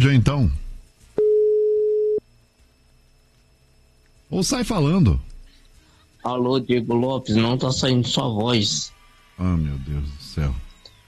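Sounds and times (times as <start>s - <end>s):
speech: 0.0s - 0.6s, 4.3s - 5.3s, 6.2s - 10.6s
telephone line beep on a landline: 1.2s - 2.2s.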